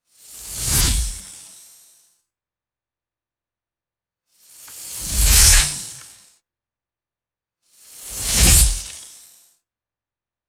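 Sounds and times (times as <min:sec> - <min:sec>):
airy electric energy whooshes passing by: 0:05.0 - 0:05.9.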